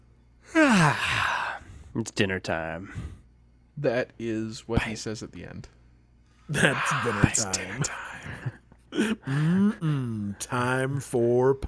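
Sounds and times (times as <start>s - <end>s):
person yawning: 0.5s - 1.6s, 6.5s - 7.8s, 9.0s - 10.4s
speech: 0.8s - 1.2s, 2.0s - 3.2s, 3.8s - 5.8s, 6.5s - 8.4s, 9.0s - 11.6s.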